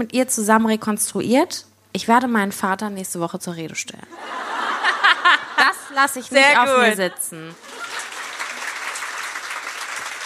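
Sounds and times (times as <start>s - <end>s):
speech: 0.0s - 4.5s, 5.2s - 7.7s
laughter: 4.1s - 9.0s
steady applause from a crowd: 7.6s - 10.2s.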